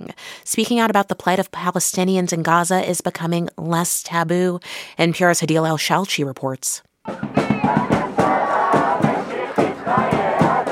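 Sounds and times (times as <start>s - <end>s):
speech: 0.5s - 8.0s
small noisy crowd of protesters chanting slogans behind a metal fence: 7.1s - 10.7s.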